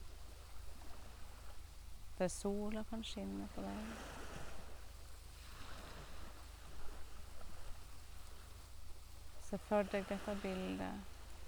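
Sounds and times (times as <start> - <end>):
wind rushing over the microphone: 0.0 - 11.4
speech: 2.2 - 4.2, 9.5 - 11.1
ocean waves breaking: 2.2 - 8.7, 9.3 - 11.4.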